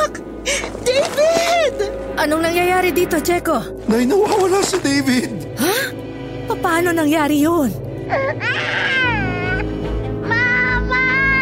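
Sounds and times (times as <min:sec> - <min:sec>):
low rumbling drone: 0:00.0 - 0:11.4
speech: 0:02.2 - 0:08.7
infant crying from under a bed: 0:08.1 - 0:10.6.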